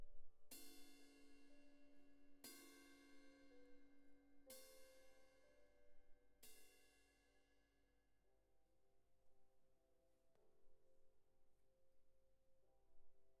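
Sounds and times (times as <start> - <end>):
cymbal close: 0.5 - 5.6, 6.4 - 7.5.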